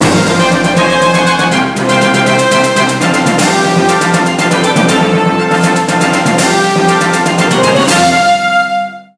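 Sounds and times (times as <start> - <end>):
jingle: 0.0 - 8.4.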